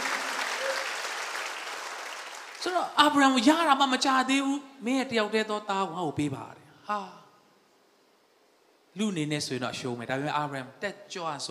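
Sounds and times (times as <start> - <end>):
congregation clapping at a Sunday church service: 0.0 - 2.8
speech: 2.6 - 7.2, 9.0 - 11.4.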